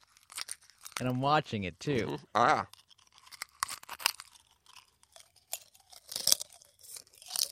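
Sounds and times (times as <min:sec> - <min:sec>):
man crunching a glass light bulb in his mouth: 0:00.0 - 0:01.0, 0:02.6 - 0:07.5
speech: 0:01.0 - 0:02.8.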